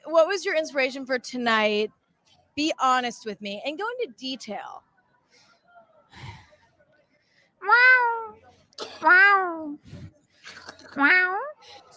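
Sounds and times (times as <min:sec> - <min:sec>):
speech: 0:00.2 - 0:02.0, 0:02.6 - 0:04.9, 0:07.6 - 0:11.8
short breathy sounds: 0:05.3 - 0:07.6
person imitating a cat with drawn-out meows: 0:07.6 - 0:08.4, 0:10.9 - 0:11.6.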